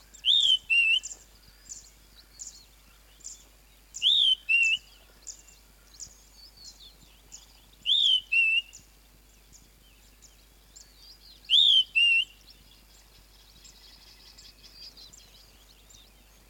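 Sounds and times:
birds chirping: 0:00.0 - 0:16.4
flappet lark repeating a two-part whistle: 0:00.2 - 0:01.2, 0:04.0 - 0:04.9, 0:07.8 - 0:08.8, 0:11.4 - 0:12.4.

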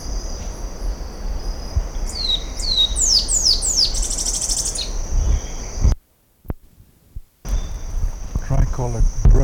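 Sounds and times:
tricolored brushfinch singing: 0:00.0 - 0:05.8
steady insect drone: 0:00.0 - 0:06.0, 0:06.8 - 0:09.4.

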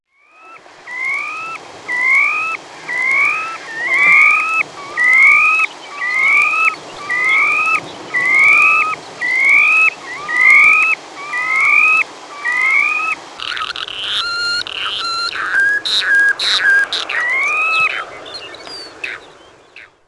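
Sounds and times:
stilt sandpiper: 0:00.4 - 0:19.2.

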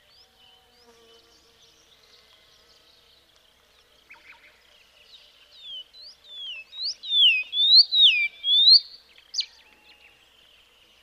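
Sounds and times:
Karoo scrub robin song of clear slurred whistles: 0:06.8 - 0:09.5.

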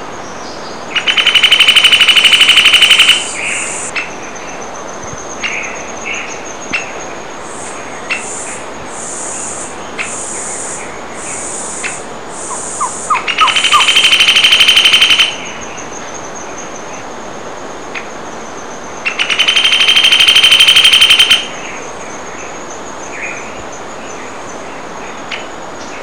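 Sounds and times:
yellow eared woodpecker: 0:01.0 - 0:03.9, 0:11.8 - 0:15.4, 0:19.1 - 0:21.5.

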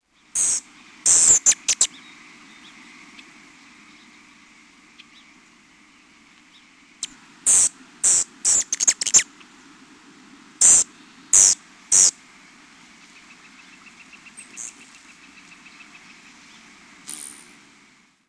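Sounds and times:
rufous hummingbird: 0:00.1 - 0:09.3, 0:10.6 - 0:12.2, 0:13.0 - 0:17.6.

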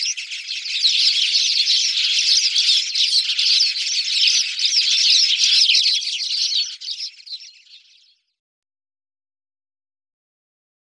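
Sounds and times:
Spanish sparrow chattering: 0:00.0 - 0:07.9.

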